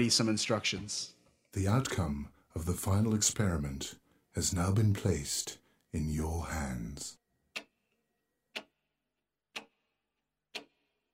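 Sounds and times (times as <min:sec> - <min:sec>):
speech: 0:00.0 - 0:07.2
clock ticking: 0:04.4 - 0:11.1.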